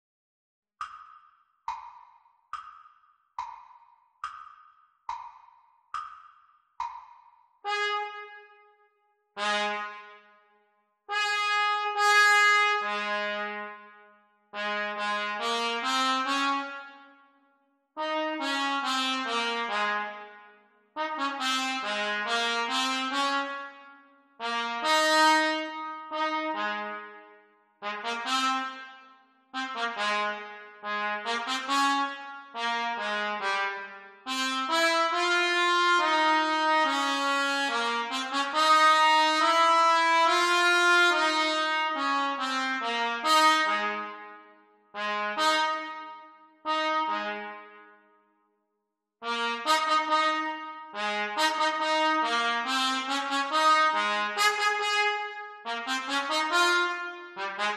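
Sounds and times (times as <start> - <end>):
trumpet duets: 7.6 - 8.6, 9.4 - 10.3, 11.1 - 13.9, 14.6 - 17.0, 18.0 - 20.4, 21.0 - 27.2, 27.8 - 44.4, 45.0 - 47.9, 49.2 - 57.7.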